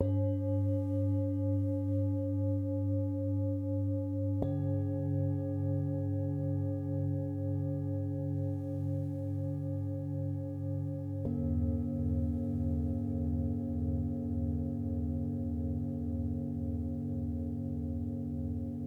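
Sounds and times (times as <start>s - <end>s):
singing bowls: 0.0s - 18.8s.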